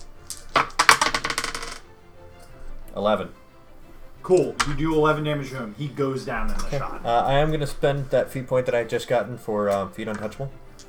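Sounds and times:
dice clattering across a hard tabletop during a tabletop game: 0.0s - 1.9s, 4.4s - 4.8s
speech: 3.0s - 3.4s, 4.3s - 10.8s.

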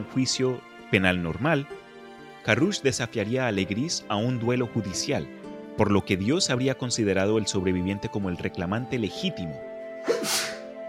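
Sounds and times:
speech: 0.0s - 1.8s, 2.4s - 10.5s
sneeze: 10.0s - 10.7s.

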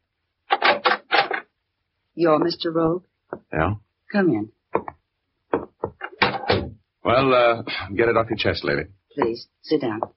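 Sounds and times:
speech: 2.2s - 4.6s, 7.1s - 10.1s
solid raps on a wooden cabin door: 4.8s - 6.8s.

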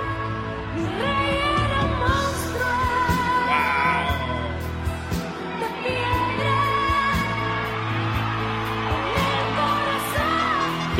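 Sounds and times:
live singing voice with music: 0.0s - 10.9s
crowd cheering and whooping: 5.0s - 10.9s.

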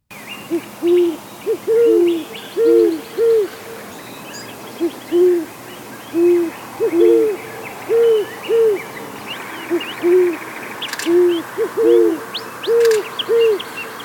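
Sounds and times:
male great horned owl hooting: 0.5s - 3.5s, 4.8s - 8.9s, 9.6s - 10.4s, 11.0s - 13.7s.

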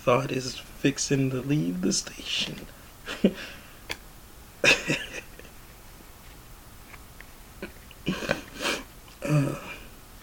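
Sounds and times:
speech: 0.0s - 3.6s, 4.6s - 5.1s
coughing: 4.6s - 5.5s, 7.6s - 9.9s
sniffling: 7.6s - 10.0s.

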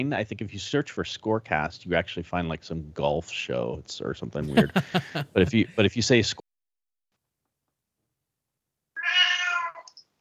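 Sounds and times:
speech: 0.0s - 6.4s
laughter: 4.4s - 5.9s
Siamese cat meowing: 9.0s - 9.9s.

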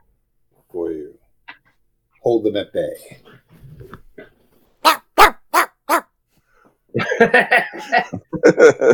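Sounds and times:
speech: 2.2s - 3.3s, 7.2s - 8.9s
miniature Labradoodle barking: 4.8s - 6.1s
laughter: 7.0s - 8.9s.

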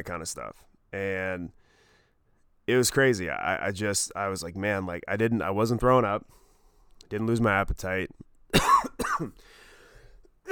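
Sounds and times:
speech: 0.0s - 1.6s, 2.7s - 6.4s, 7.1s - 9.6s
faint breathy noise: 1.6s - 2.4s, 6.3s - 7.0s, 9.4s - 10.3s
person coughing harshly: 8.5s - 9.4s.

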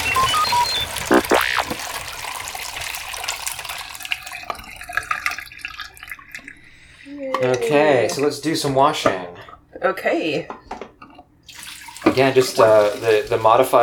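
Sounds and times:
liquid pouring through a funnel: 0.0s - 7.1s, 11.5s - 13.8s
drips: 0.0s - 7.5s, 11.4s - 13.8s
speech: 7.7s - 10.6s, 12.2s - 13.8s.

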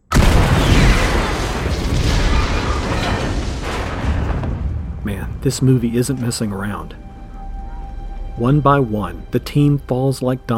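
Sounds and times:
grenade exploding inside a shuttle in a film scene: 0.0s - 7.0s
roaring wash of broadband noise and rumbling debris: 0.0s - 8.5s
speech: 5.4s - 7.1s, 8.4s - 10.5s.

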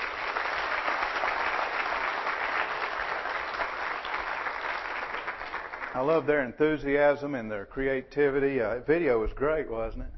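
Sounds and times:
large crowd clapping steadily: 0.0s - 6.3s
speech: 6.0s - 10.1s.

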